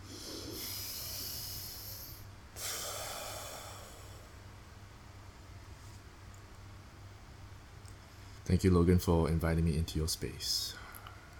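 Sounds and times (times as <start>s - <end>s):
deep breath during a guided breathing exercise: 0.0s - 4.4s
speech: 8.5s - 10.8s.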